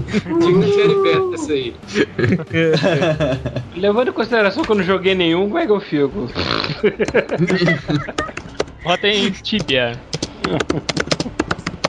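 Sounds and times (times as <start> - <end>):
laughter: 0.0 - 3.8, 6.6 - 9.4, 10.3 - 11.4
speech: 0.1 - 10.9
heavy hard typing on computer keyboard: 8.1 - 11.8.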